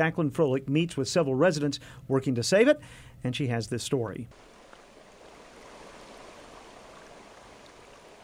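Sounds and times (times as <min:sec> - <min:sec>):
speech: 0:00.0 - 0:04.6
water rushing out of dam spillway: 0:04.3 - 0:08.2.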